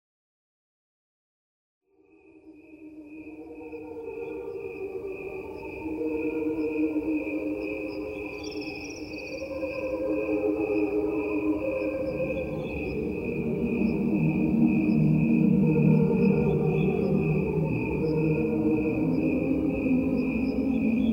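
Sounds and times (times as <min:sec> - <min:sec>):
dense bed of lower choir-like tones: 0:01.9 - 0:21.1
crickets chirping at regular speed: 0:02.0 - 0:21.1.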